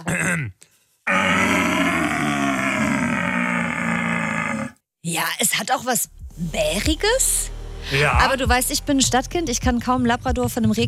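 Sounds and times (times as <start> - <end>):
speech: 0.0 - 1.6, 5.0 - 10.8
stag roar blown through a wooden deer call: 1.1 - 4.8.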